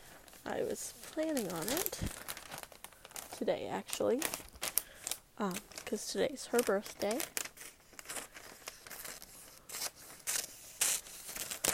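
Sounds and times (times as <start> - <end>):
wrapping paper crinkling and tearing: 0.0 - 11.7
speech: 0.5 - 2.3, 3.4 - 4.5, 5.4 - 7.4
scissors cutting wrapping paper: 6.5 - 11.7.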